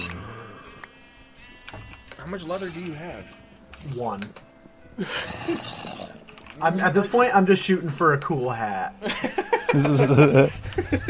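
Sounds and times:
high-pitched video game pig squeal as the pig dies: 0.0s - 3.0s
speech: 2.3s - 11.0s
laughter: 9.0s - 11.0s.

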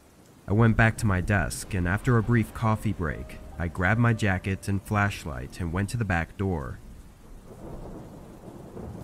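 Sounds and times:
steady rain falling at a scrapyard: 0.0s - 9.0s
low rumbling thunder: 0.5s - 3.8s, 6.8s - 9.0s
speech: 0.5s - 6.8s.

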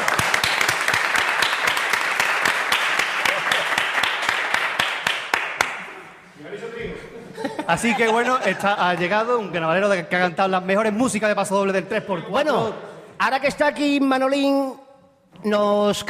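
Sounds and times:
audience applause: 0.0s - 6.0s
laughter: 3.2s - 3.8s, 7.2s - 9.5s
speech: 7.7s - 14.8s, 15.4s - 16.0s.

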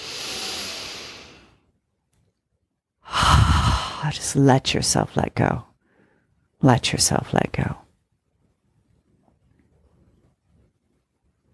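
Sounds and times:
person breathing in: 0.0s - 1.6s, 3.1s - 4.1s
slow deep exhale during a relaxation breathing exercise: 0.0s - 1.6s, 3.1s - 4.0s
speech: 4.0s - 5.7s, 6.6s - 7.8s.

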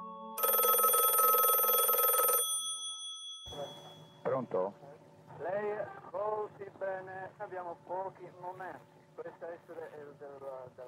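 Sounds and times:
telephone bell ringing: 0.4s - 4.2s
speech: 4.4s - 4.8s, 5.4s - 10.8s.

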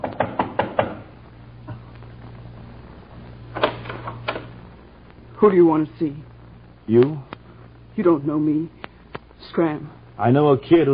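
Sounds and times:
sharp knocking on a door: 0.0s - 1.1s
steady low hum: 0.0s - 10.9s
speech: 5.4s - 6.3s, 6.9s - 7.3s, 8.0s - 8.8s, 9.4s - 10.9s.

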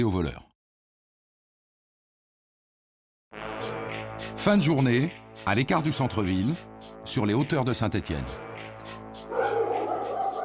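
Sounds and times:
speech: 0.0s - 0.5s, 3.6s - 8.7s
police dogs barking and yelping on the heights of Saint-Étienne: 9.2s - 10.4s.

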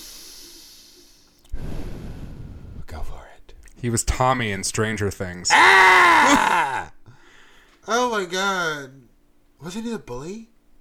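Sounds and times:
hiss: 0.0s - 2.8s
slow deliberate breathing to calm down: 0.0s - 2.9s, 7.0s - 7.8s
speech: 3.8s - 6.9s, 7.9s - 9.0s, 9.6s - 10.5s.

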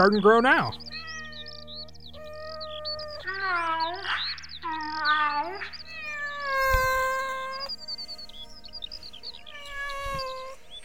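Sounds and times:
speech: 0.0s - 0.9s
female cat meowing: 0.8s - 7.7s, 9.5s - 10.6s.

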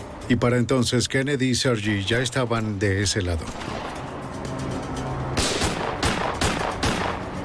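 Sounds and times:
speech: 0.3s - 3.8s
sharp loud gunshots: 5.4s - 7.3s.

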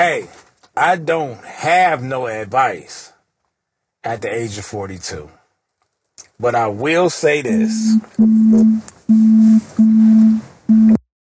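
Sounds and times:
speech: 0.0s - 3.1s, 4.0s - 5.4s, 6.4s - 11.0s
electronic incoming call phone tone beeping: 7.5s - 11.0s.

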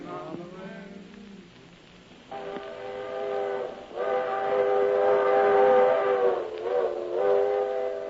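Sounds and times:
small locomotive whistle blasts in a congested railroad yard: 2.3s - 8.0s.

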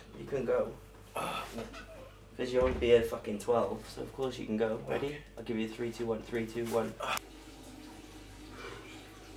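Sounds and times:
speech: 0.2s - 7.3s
man urinating into a toilet: 7.0s - 9.3s.

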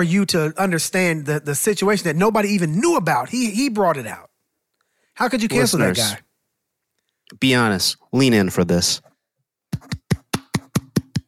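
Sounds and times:
speech: 0.0s - 4.3s, 5.2s - 6.2s, 7.3s - 9.1s
sarcastic pointed hand claps: 9.7s - 11.2s.

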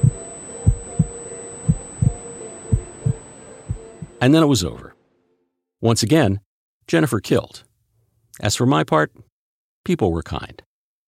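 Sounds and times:
heartbeat thumping in low double pulses: 0.0s - 4.3s
thin high-pitched tone: 0.0s - 5.0s
faint hum: 0.0s - 5.4s
speech: 4.2s - 4.9s, 5.8s - 7.7s, 8.4s - 10.6s.

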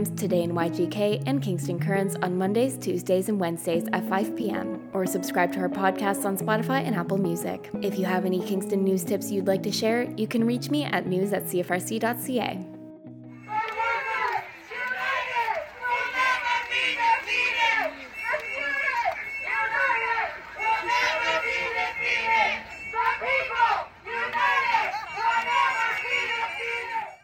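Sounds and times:
speech: 0.0s - 12.7s
crowd of striking graduate students shouting and chanting on a picket line: 13.3s - 27.2s.

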